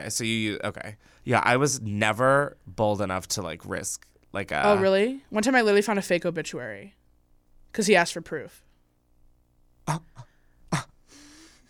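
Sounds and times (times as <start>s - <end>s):
speech: 0.0s - 7.0s, 7.7s - 8.6s, 9.9s - 10.1s, 10.7s - 10.9s
longer breathy exhale with a slight voiced hum: 9.9s - 11.6s
sharp gasps of air: 10.2s - 11.6s.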